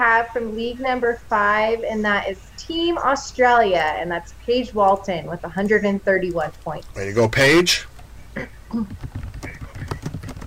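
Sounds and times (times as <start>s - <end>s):
speech: 0.0s - 9.2s
murmuring voice of typist with a pen in mouth: 7.0s - 7.8s
fingers typing on a computer keyboard: 8.7s - 10.4s.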